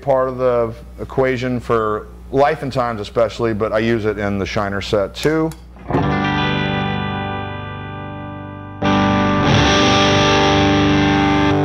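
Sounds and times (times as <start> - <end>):
speech: 0.0 - 6.1
electric guitar chords through an M300 reverb pedal: 5.8 - 11.6.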